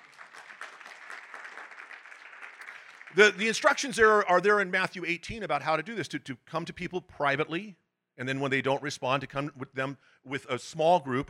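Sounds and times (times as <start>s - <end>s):
audience applause in a church: 0.0s - 3.6s
speech: 3.1s - 11.2s.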